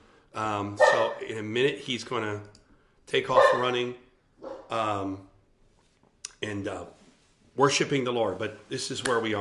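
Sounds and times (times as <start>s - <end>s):
speech: 0.4s - 4.0s, 4.7s - 5.3s, 6.4s - 7.0s, 7.6s - 9.4s
dog barking: 0.8s - 1.3s, 3.3s - 3.8s, 4.4s - 4.8s.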